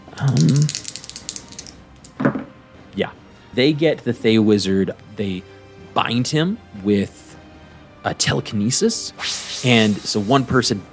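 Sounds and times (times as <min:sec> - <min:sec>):
percentile dice clattering across a hard surface: 0:00.0 - 0:02.5
speech: 0:00.2 - 0:00.8, 0:03.0 - 0:07.2, 0:08.0 - 0:10.9.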